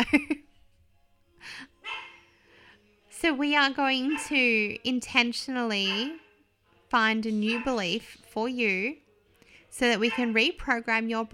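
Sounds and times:
deaf female dog barking: 0:01.8 - 0:02.3, 0:04.0 - 0:04.4, 0:05.8 - 0:06.4, 0:07.4 - 0:07.9, 0:10.0 - 0:10.4
speech: 0:03.2 - 0:06.2, 0:06.9 - 0:09.0, 0:09.7 - 0:11.3.

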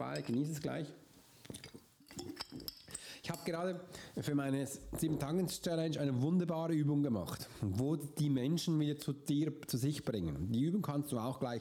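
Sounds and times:
glass clinking: 0:00.0 - 0:00.7, 0:01.4 - 0:03.6
speech: 0:00.0 - 0:02.3, 0:03.4 - 0:11.6.

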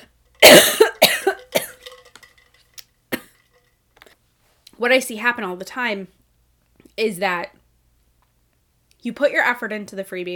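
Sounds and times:
harsh coughing fit: 0:00.4 - 0:01.8
speech: 0:04.8 - 0:06.2, 0:07.0 - 0:07.6, 0:09.0 - 0:10.3.

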